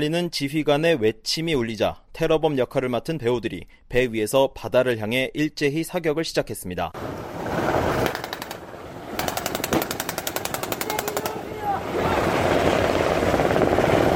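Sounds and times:
speech: 0:00.0 - 0:07.2
broad rushing roar of wind and helicopter engine noise: 0:07.0 - 0:14.1
Korean coast guard helicopter rotor chopping off Haeundae, Busan: 0:07.9 - 0:14.1.

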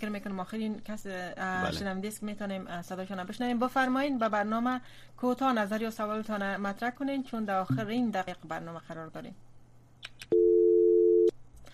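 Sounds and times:
speech: 0:00.0 - 0:09.5
phone line busy tone after a call is cut off: 0:10.3 - 0:11.3.

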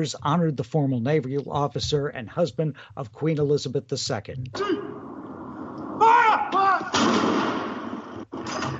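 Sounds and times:
speech: 0:00.0 - 0:04.8
person shouting a call: 0:04.6 - 0:05.0, 0:06.0 - 0:06.9
cannons firing a salute outdoors: 0:06.0 - 0:08.7.

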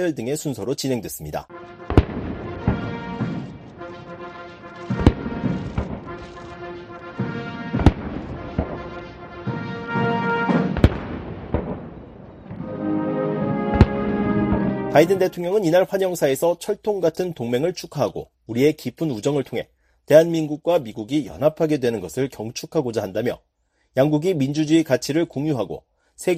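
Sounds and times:
speech: 0:00.0 - 0:01.8, 0:15.0 - 0:26.3
military band playing a national anthem: 0:01.5 - 0:15.7
cannon blasts of a gun salute at an official welcoming ceremony: 0:01.6 - 0:12.7, 0:13.6 - 0:15.3.

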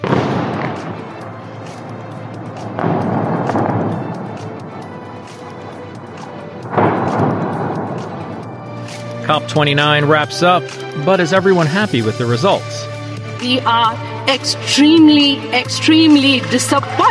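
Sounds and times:
airstrike explosions in a city: 0:00.0 - 0:09.3
speech: 0:09.3 - 0:17.0.

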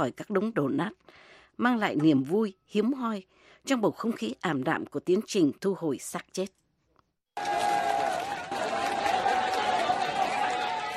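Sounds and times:
speech: 0:00.0 - 0:06.6
crowd applause: 0:07.4 - 0:10.9.

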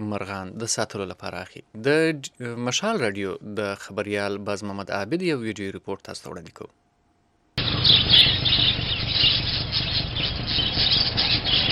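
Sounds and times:
speech: 0:00.1 - 0:06.8
many caged birds squawking and chirping at market bird shops in Jalalabad: 0:07.6 - 0:11.6.

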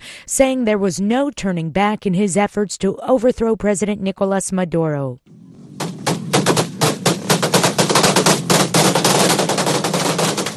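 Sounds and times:
speech: 0:00.3 - 0:05.4
gunfire during street demonstrations: 0:05.3 - 0:10.5.

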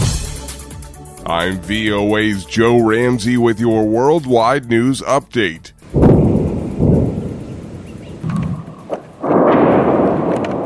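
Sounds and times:
speech: 0:01.2 - 0:06.0
heavy explosions from airstrikes in southern Lebanon: 0:05.9 - 0:10.6.

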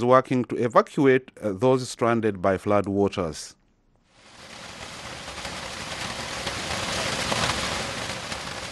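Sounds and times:
speech: 0:00.0 - 0:03.6
heavy rain pouring down in northern Cameroon: 0:04.1 - 0:08.6.

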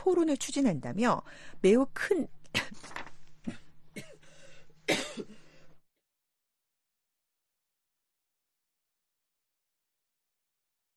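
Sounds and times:
speech: 0:00.0 - 0:04.1
harsh coughing: 0:03.4 - 0:05.5.

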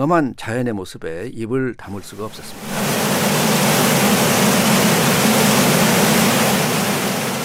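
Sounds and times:
speech: 0:00.0 - 0:02.9
roaring waterfall: 0:02.1 - 0:07.4.

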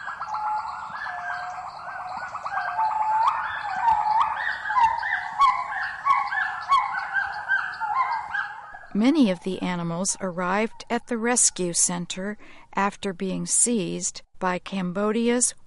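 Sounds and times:
rare birds honking in forest: 0:00.0 - 0:09.8
speech: 0:09.0 - 0:15.6.

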